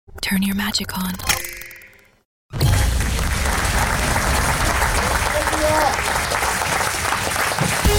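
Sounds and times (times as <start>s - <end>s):
speech: 0.3s - 1.5s
large audience applauding at the end of a theatre performance: 2.7s - 7.9s.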